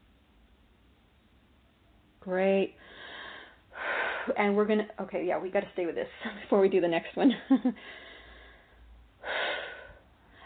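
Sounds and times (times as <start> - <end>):
speech: 2.2 - 3.0, 4.2 - 8.1
deep breath: 2.8 - 4.3, 7.8 - 10.4.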